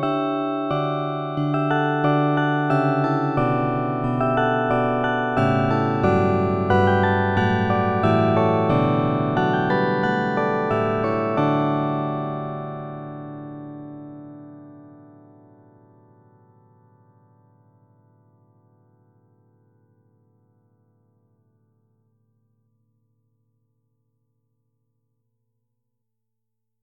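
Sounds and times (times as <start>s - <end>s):
carillon bells: 0.2s - 12.1s
harp: 0.2s - 12.3s.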